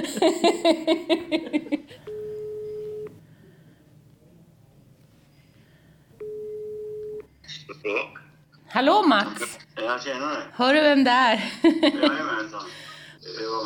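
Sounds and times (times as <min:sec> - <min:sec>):
speech: 0:00.0 - 0:01.5, 0:08.8 - 0:13.6
telephone ringing tone on a call being placed: 0:02.1 - 0:03.2, 0:06.2 - 0:07.3.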